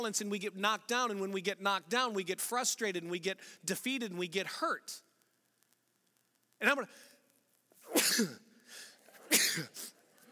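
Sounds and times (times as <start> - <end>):
speech: 0.0 - 5.1, 6.6 - 7.1, 7.9 - 9.9
one person sneezing: 7.8 - 10.0.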